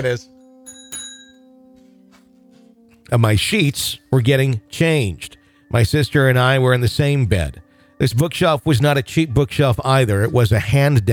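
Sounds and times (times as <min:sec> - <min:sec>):
speech: 0:00.0 - 0:00.4, 0:03.1 - 0:11.1
single small bell struck once: 0:00.3 - 0:01.7.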